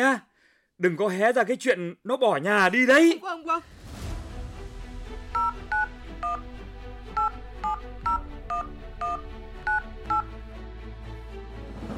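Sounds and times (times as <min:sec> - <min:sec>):
speech: 0:00.0 - 0:03.8
two-tone beeps of a phone number dialed on a touch-tone telephone: 0:05.4 - 0:06.4, 0:07.2 - 0:10.3.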